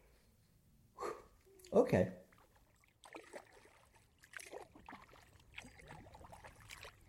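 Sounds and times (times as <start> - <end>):
speech: 1.7 - 2.2
kayak paddle dipping into river water: 2.2 - 7.0.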